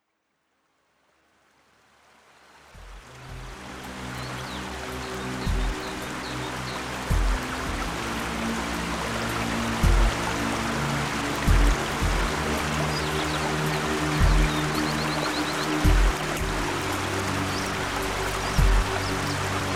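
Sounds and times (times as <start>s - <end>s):
mountain stream flowing: 1.2s - 19.7s
relaxing music: 2.6s - 19.7s.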